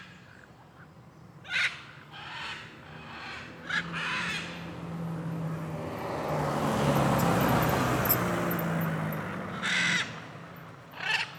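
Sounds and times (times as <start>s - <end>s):
many Blue-and-yellow macaws calling along a street in Alto Paraíso, Cerrado, Brazil: 1.5s - 4.7s, 9.6s - 10.3s, 10.9s - 11.3s
cars passing on a street in Alto Paraíso, Brazil: 2.0s - 11.3s.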